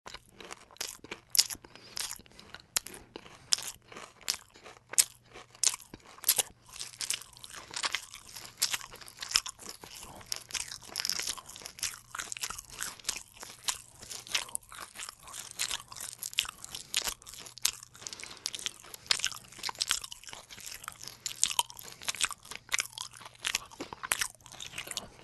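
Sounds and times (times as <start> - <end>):
chomping: 0.1 - 25.2.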